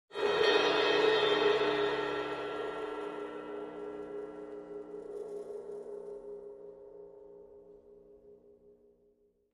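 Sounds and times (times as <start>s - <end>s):
large cymbal trill: 0.2s - 5.0s.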